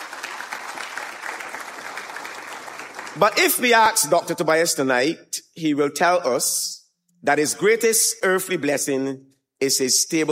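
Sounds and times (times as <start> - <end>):
large audience applauding in a hall: 0.0 - 3.7
speech: 3.2 - 10.3.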